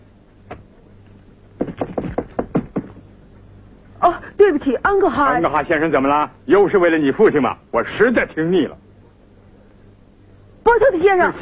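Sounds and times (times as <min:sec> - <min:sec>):
knuckles knocking on a door: 0:01.6 - 0:03.1
speech: 0:04.6 - 0:08.8, 0:10.7 - 0:11.3.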